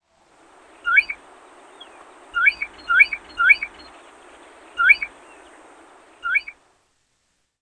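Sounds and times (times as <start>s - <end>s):
Groove-billed ani calls: 0.8s - 6.6s.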